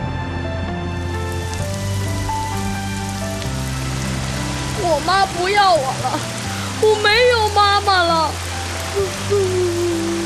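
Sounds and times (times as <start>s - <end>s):
sustained musical tones: 0.0s - 9.4s
steady rain pouring: 0.3s - 10.2s
speech: 5.0s - 9.5s.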